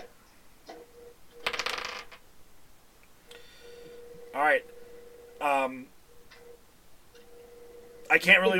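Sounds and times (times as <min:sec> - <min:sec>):
hard plastic dice tumbling and rattling across a table: 0:01.5 - 0:02.2
speech: 0:08.1 - 0:08.5.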